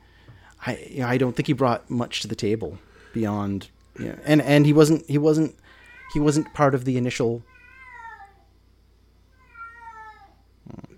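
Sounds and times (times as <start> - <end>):
speech: 0.6 - 7.5
cat meowing: 5.9 - 6.6, 7.4 - 8.5, 9.3 - 10.4.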